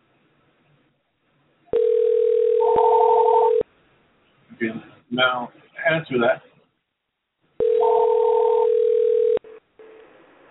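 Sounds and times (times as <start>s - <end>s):
continuous electronic telephone tone while a number is dialed: 1.7s - 3.7s, 7.6s - 10.1s
speech: 4.6s - 6.5s.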